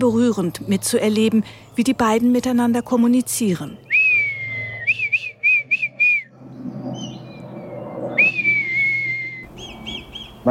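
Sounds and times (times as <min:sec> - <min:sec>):
speech: 0:00.0 - 0:03.9
man whistling an imitation of a female red kite's call: 0:03.8 - 0:06.4, 0:07.8 - 0:10.3.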